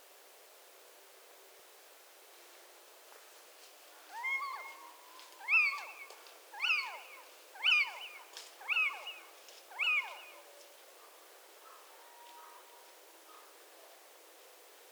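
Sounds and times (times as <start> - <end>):
little owl alarm call: 4.1 - 10.4.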